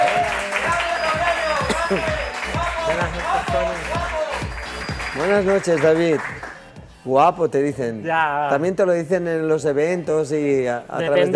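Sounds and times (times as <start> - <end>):
crowd cheering: 0.0 - 6.4
audience applauding a guest being introduced: 0.0 - 6.6
speech: 1.9 - 2.2, 3.0 - 4.2, 5.2 - 6.4, 7.0 - 11.3.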